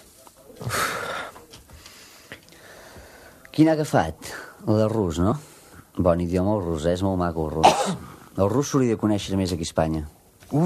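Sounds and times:
faint shallow breaths: 0.6 - 3.5
speech: 3.6 - 10.6.

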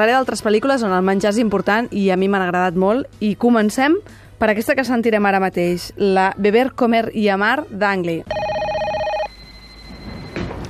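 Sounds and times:
speech: 0.0 - 8.4
telephone bell ringing: 8.3 - 10.6.

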